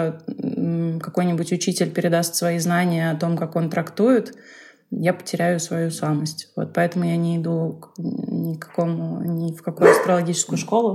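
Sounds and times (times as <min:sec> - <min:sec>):
speech: 0:00.0 - 0:10.9
dog barking: 0:09.8 - 0:10.2.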